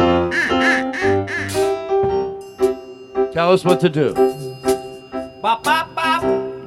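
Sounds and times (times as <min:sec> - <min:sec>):
duck whistle quacking: 0:00.2 - 0:01.8
speech: 0:03.4 - 0:04.4, 0:05.4 - 0:06.4.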